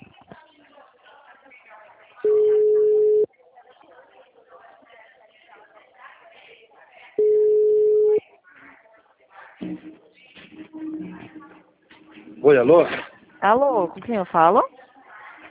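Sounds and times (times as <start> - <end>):
indistinct voices murmuring: 0.0 - 15.4
telephone ringback tone: 2.3 - 3.3, 7.2 - 8.2
speech: 12.4 - 14.8.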